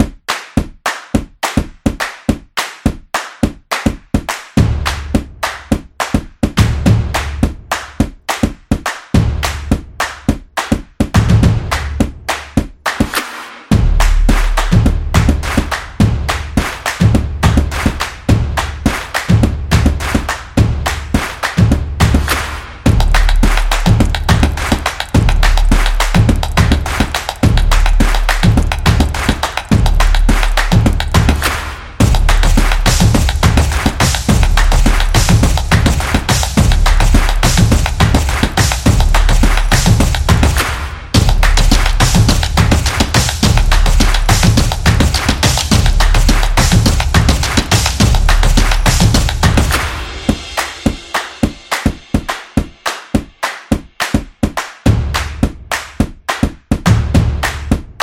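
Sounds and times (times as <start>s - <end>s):
drum beat: 0.0s - 58.0s.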